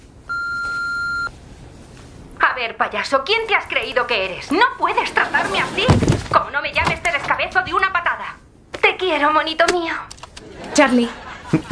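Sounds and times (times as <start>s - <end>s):
answering machine beep: 0.3s - 1.3s
speech: 2.6s - 8.1s, 9.1s - 10.1s, 10.8s - 11.7s
laughter: 10.4s - 11.7s.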